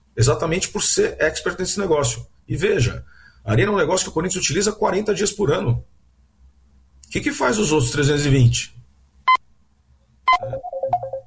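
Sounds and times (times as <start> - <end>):
speech: 0.2 - 5.9, 7.1 - 8.8, 10.4 - 10.7
electronic telephone ringtone from an incoming call: 10.3 - 11.2.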